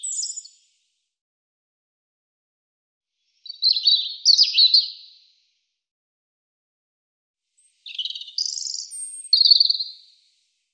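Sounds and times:
European robin singing: 0.0s - 0.6s, 3.5s - 5.0s, 7.6s - 10.1s.

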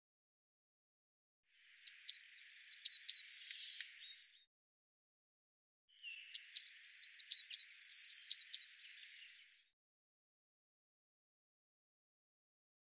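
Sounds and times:
Eurasian blue tit calling: 1.9s - 4.3s, 6.0s - 9.4s.

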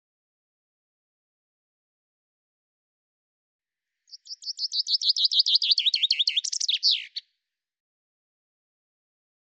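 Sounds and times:
common chaffinch song with downward-sweeping notes and terminal flourish: 4.1s - 7.2s.

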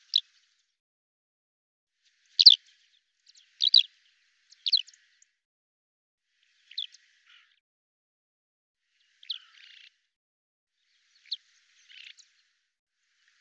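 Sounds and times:
sharp high bird chirps with soft buzzy trail: 2.4s - 2.6s, 3.6s - 3.9s.

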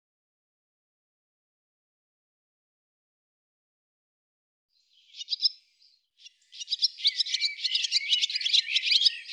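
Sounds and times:
barn swallow twittering: 4.9s - 9.3s
speech: 5.2s - 5.4s.

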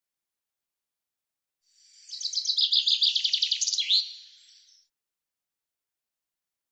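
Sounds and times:
common chaffinch song: 1.8s - 4.9s.

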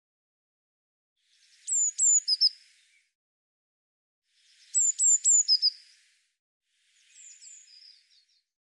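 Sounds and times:
Eurasian blue tit singing: 1.3s - 3.1s, 4.4s - 6.2s, 6.8s - 8.4s.

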